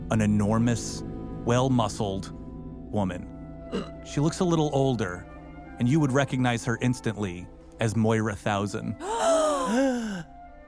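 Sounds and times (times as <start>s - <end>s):
speech: 0.1s - 10.3s
person gasping in startled surprise: 9.0s - 10.3s.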